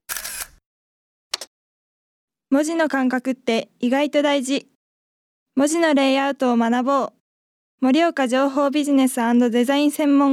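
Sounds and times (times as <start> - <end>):
camera shutter taking a photo: 0.1 - 0.6
speech: 2.5 - 4.7, 5.6 - 7.2, 7.8 - 10.3.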